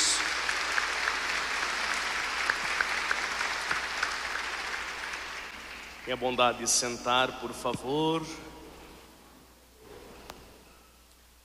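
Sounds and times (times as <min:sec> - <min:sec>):
audience at a Eucharist celebration in a sanctuary applauding: 0:00.0 - 0:06.2
speech: 0:06.1 - 0:08.5.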